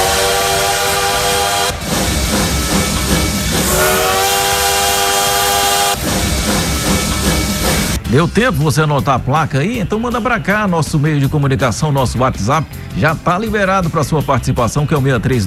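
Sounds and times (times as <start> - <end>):
steam train roaring past: 0.0 - 8.4
speech: 8.1 - 15.4.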